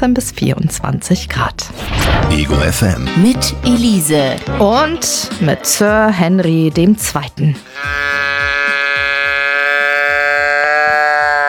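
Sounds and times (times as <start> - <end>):
speech: 0.0 - 8.2
nasal bleat-like tone from a teddy bear: 7.6 - 11.4.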